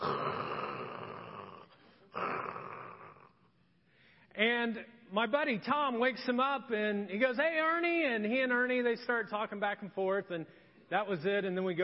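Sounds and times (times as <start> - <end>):
voice imitating a man snoring with his head down on a desk: 0.0 - 3.5
speech: 4.4 - 11.8.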